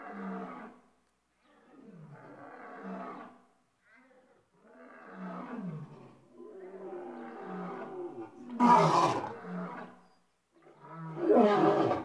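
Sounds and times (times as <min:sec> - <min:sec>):
lion producing moaning grunting roars: 0:08.6 - 0:09.4, 0:11.2 - 0:12.0.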